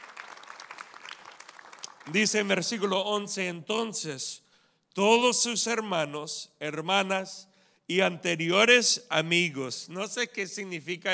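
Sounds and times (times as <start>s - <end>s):
crowd clapping steadily together: 0.0s - 2.5s
speech: 2.1s - 4.4s, 5.0s - 11.1s.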